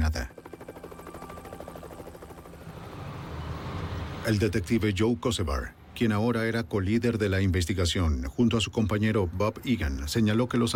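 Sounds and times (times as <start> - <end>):
helicopter rotor thumping overhead: 0.0 - 2.9
speech: 4.2 - 10.7.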